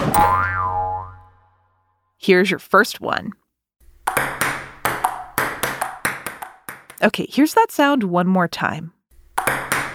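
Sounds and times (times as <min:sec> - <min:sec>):
ping pong ball bouncing in a table tennis rally: 0:00.2 - 0:01.2, 0:04.0 - 0:07.0, 0:09.3 - 0:09.9
speech: 0:02.3 - 0:03.4, 0:07.0 - 0:08.9.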